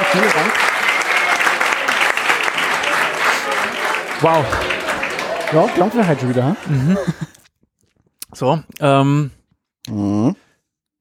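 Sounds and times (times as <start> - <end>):
crowd applauding: 0.0 - 7.4
laughter: 0.0 - 7.5
speech: 0.1 - 0.8, 4.2 - 4.8, 5.5 - 7.4, 8.4 - 10.4.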